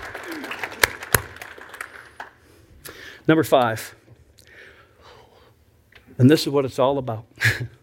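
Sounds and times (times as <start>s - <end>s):
church audience clapping: 0.0s - 2.4s
speech: 3.2s - 4.0s, 6.2s - 7.8s.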